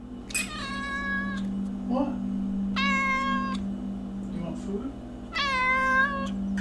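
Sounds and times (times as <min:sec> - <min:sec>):
steady low hum: 0:00.0 - 0:06.5
domestic cat meowing: 0:00.4 - 0:01.5, 0:02.8 - 0:03.6, 0:05.3 - 0:06.5.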